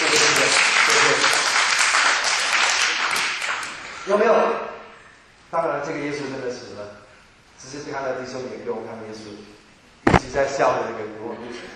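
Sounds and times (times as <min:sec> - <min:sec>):
audience applause: 0:00.0 - 0:03.8
speech: 0:04.1 - 0:04.6, 0:05.5 - 0:07.0, 0:07.6 - 0:09.6, 0:10.3 - 0:11.7.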